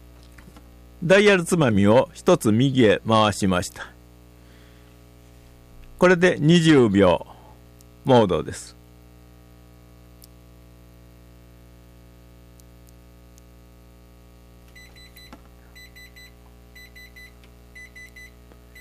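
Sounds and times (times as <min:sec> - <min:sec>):
speech: 0:01.0 - 0:03.9, 0:06.0 - 0:07.3, 0:08.0 - 0:08.8
kitchen timer buzzer beeping: 0:14.8 - 0:18.7.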